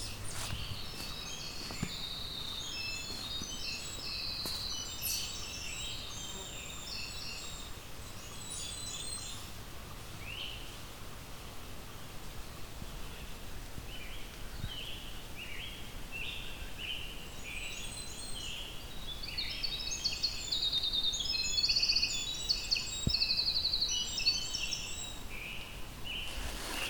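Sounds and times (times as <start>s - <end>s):
winter wren singing its long song: 0.0s - 9.5s, 17.4s - 26.8s
steady hiss of forest background: 0.0s - 26.8s.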